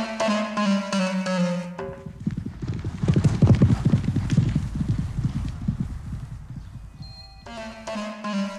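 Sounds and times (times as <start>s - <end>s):
bright musical tones: 0.0s - 2.0s, 7.0s - 8.5s
horse hooves clip-clopping: 1.8s - 7.7s.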